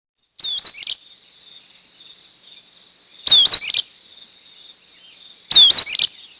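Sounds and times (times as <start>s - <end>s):
Sulphur-bellied Flycatcher shrill squeaky twisting notes: 3.3s - 3.8s, 5.5s - 6.1s.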